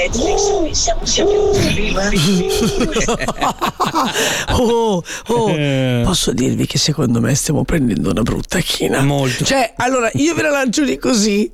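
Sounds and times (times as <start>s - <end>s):
pigeon cooing: 0.0s - 3.3s
speech: 0.0s - 11.5s
laughter: 1.6s - 6.1s.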